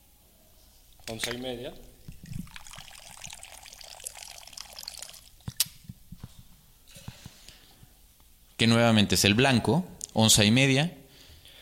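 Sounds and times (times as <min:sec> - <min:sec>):
white rum pouring into a large cocktail shaker: 0:00.9 - 0:05.8
drips: 0:00.9 - 0:05.9
speech: 0:01.1 - 0:02.4, 0:08.6 - 0:11.0.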